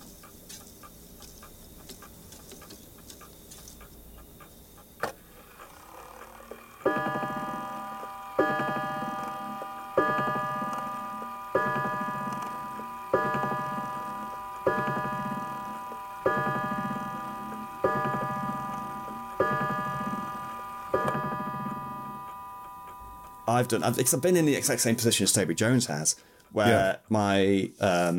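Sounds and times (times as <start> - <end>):
mantel clock ticking: 0.0 - 27.5
ringing mantel clock chime striking: 5.5 - 26.9
speech: 23.5 - 28.1.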